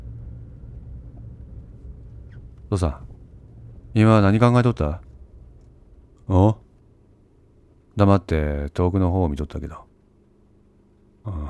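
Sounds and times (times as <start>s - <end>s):
car engine rumbling as the car pulls away at a green traffic light: 0.0s - 8.0s
speech: 2.7s - 3.1s, 3.9s - 5.1s, 6.3s - 6.6s, 8.0s - 9.9s, 11.2s - 11.4s.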